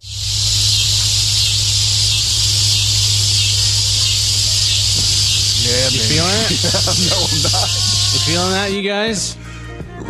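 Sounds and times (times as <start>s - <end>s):
low rumbling hum: 0.0s - 8.7s
cicadas buzzing: 0.0s - 8.8s
laughter: 5.6s - 8.8s
speech: 6.5s - 9.4s.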